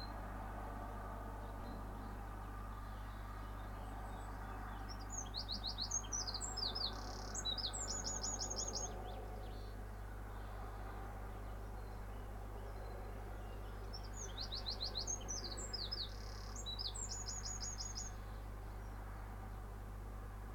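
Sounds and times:
constant low drone: 0.0s - 20.5s
bird chirping in the morning: 3.0s - 9.7s, 11.8s - 19.0s.

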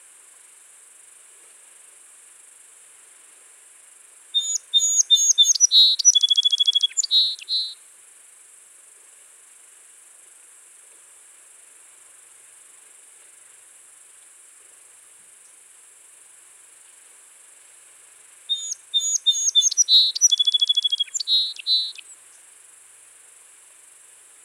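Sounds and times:
quiet hiss: 0.0s - 24.4s
song sparrow (Melospiza melodia) singing: 4.4s - 7.8s, 18.5s - 22.0s.

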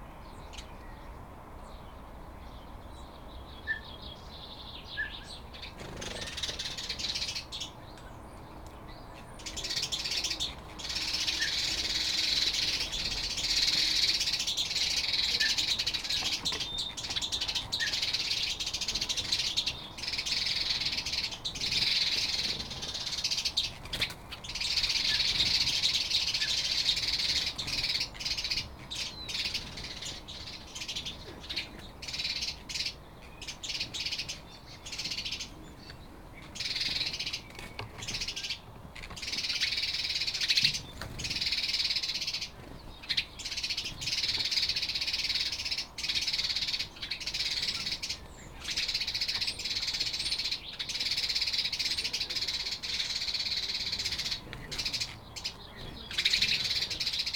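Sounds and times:
house sparrows chattering: 0.0s - 57.3s.

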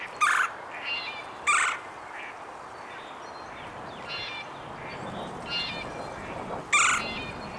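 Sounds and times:
Red-bellied woodpecker Melanerpes carolinus harsh calls: 0.2s - 0.6s, 1.5s - 1.9s, 6.7s - 7.4s.

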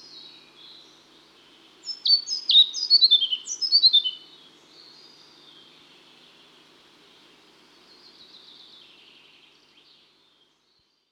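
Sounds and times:
European Pied Flycatcher singing high whistled notes: 1.8s - 4.3s.

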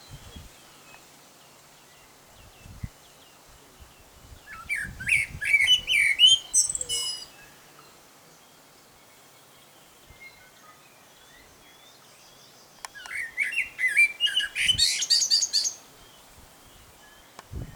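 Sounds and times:
male common blackbird singing: 4.5s - 7.6s, 11.2s - 16.2s.

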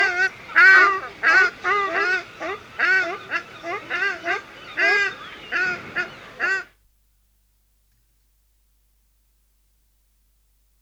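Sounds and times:
ruddy shelduck honking at a zoo in the Netherlands: 0.0s - 6.7s.

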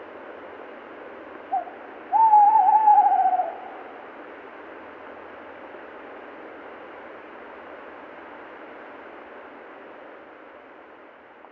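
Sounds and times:
Tawny owl Strix aluco hooting: 1.5s - 3.9s.

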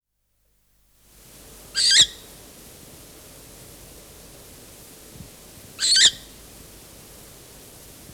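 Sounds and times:
short-eared owl on a nest with young rasping: 5.8s - 6.2s.

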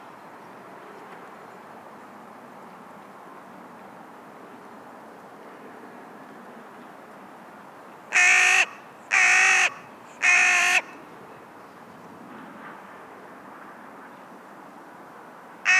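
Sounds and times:
Carrion crow giving harsh hoarse caws: 8.1s - 11.0s.

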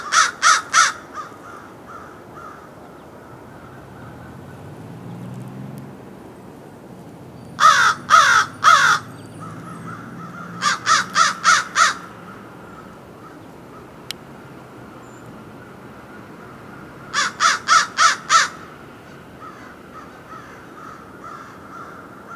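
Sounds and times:
American crow Corvus brachyrhynchos cawing in harsh bursts: 0.0s - 4.6s, 7.6s - 14.0s, 15.6s - 22.3s.

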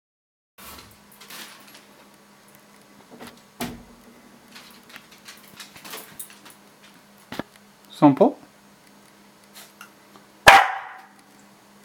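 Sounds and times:
Shiba Inu barking: 10.5s - 11.1s.

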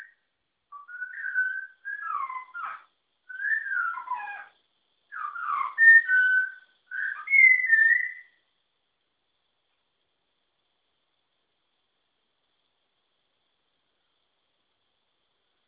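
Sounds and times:
Malabar whistling thrush whistling: 0.8s - 4.5s, 5.1s - 8.4s.

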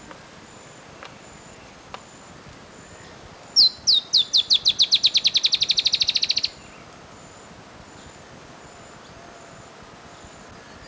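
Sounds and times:
Dusky-tailed antbird Drymophila malura calling: 3.6s - 6.6s.

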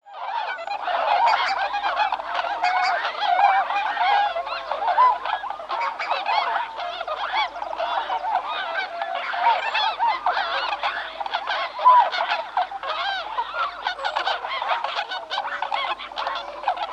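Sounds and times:
Bewick's swans calling together: 0.2s - 16.9s.

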